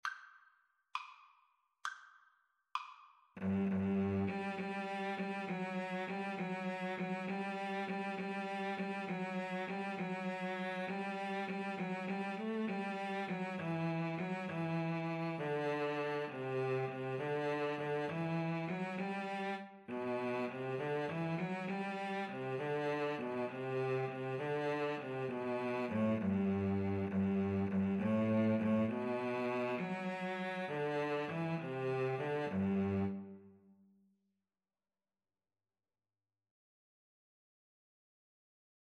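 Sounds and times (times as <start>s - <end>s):
viola and cello duet playing a carol: 3.4s - 33.4s.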